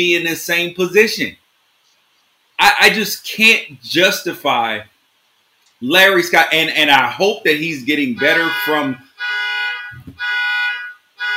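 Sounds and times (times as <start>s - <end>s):
speech: 0.0s - 1.4s, 2.6s - 4.9s, 5.8s - 9.0s
car alarm on a neighbor's car blaring with a shrill, buzzy tone: 8.2s - 11.3s.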